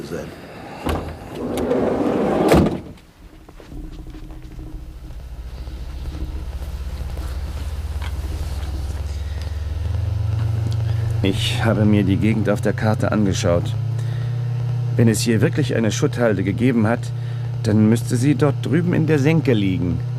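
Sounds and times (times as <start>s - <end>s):
speech: 0.1s - 1.8s, 11.2s - 13.8s, 15.0s - 20.1s
car door shutting: 0.7s - 11.2s
car engine starting and driving off: 0.8s - 20.1s.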